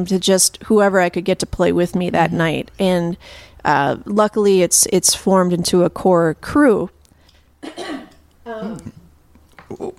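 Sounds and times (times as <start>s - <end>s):
speech: 0.0s - 7.0s, 7.6s - 9.0s, 9.7s - 9.9s
person coughing into a microphone: 7.6s - 8.9s.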